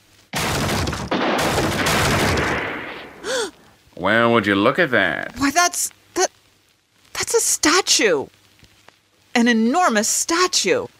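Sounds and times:
video game gunfire blasting open hinges: 0.3 - 3.3
speech: 4.0 - 6.3, 7.6 - 8.4, 9.4 - 10.9.

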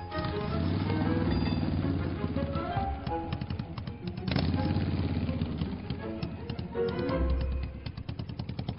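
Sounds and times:
Harley WLA-style motorcycle engine running: 0.1 - 8.7.

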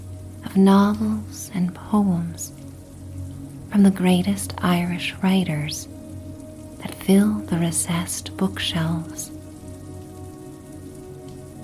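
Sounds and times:
steady rain pattering against window glass: 0.0 - 11.6
speech: 0.5 - 2.6, 3.7 - 5.9, 6.8 - 9.3.

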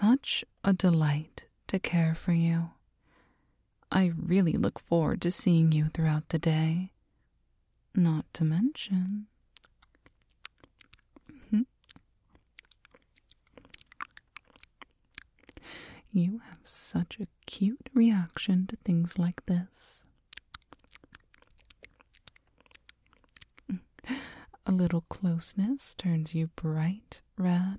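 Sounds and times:
speech: 0.2 - 2.8, 3.9 - 6.9, 7.9 - 9.3, 11.5 - 11.7, 15.7 - 20.0, 23.7 - 27.7
binaural wet mouth clicks and smacks: 9.5 - 15.7, 20.1 - 23.8.

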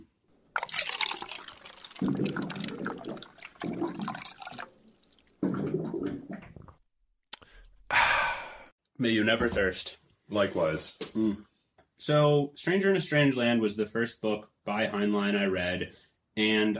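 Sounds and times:
water pouring: 0.4 - 6.8
speech: 2.0 - 2.6, 9.0 - 16.7
breathy after-drink exhale: 7.4 - 8.7.

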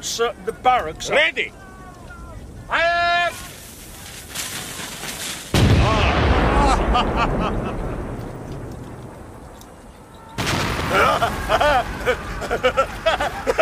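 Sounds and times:
speech: 0.0 - 1.6, 6.9 - 7.9, 10.9 - 13.5
cannon shot fired with the range set at 2,000 yards: 5.5 - 12.6
laughter: 6.5 - 8.0, 10.9 - 13.6.

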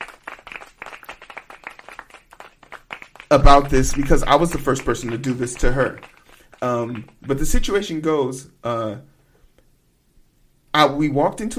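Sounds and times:
audience applause: 0.0 - 7.8
speech: 3.3 - 9.1, 10.8 - 11.5.

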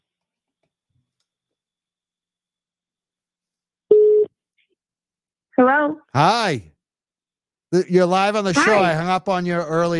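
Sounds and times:
buzzy telephone tone bursts on an outgoing call: 3.9 - 4.3
speech: 5.6 - 6.7, 7.7 - 9.9.

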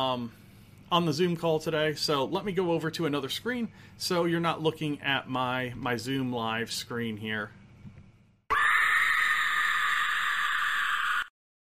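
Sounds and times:
speech: 0.0 - 7.6
shrill creature scream: 8.5 - 11.3.

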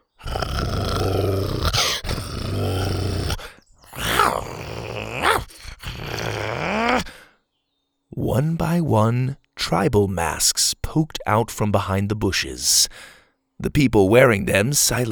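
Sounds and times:
four large dinosaurs growling: 0.0 - 7.2
dinosaur drawn-out groaning snarl: 0.0 - 7.3
speech: 8.3 - 15.1.

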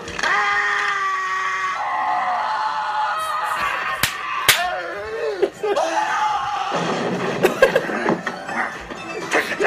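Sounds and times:
men screaming and groaning in pain: 0.2 - 6.8
sharp slapping impacts: 4.0 - 4.7
laughter: 5.1 - 6.0, 7.3 - 8.2.

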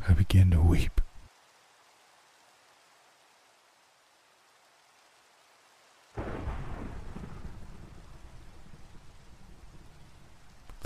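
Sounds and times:
speech: 0.0 - 1.0
steady rain: 0.0 - 10.8
loud crack of thunder rolling into deep rumble: 6.2 - 10.7.

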